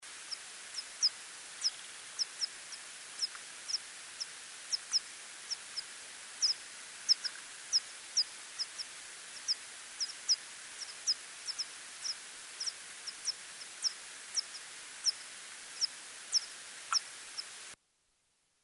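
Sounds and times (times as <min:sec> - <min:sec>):
multiple Yuma myotis bat calls: 0:00.2 - 0:17.8.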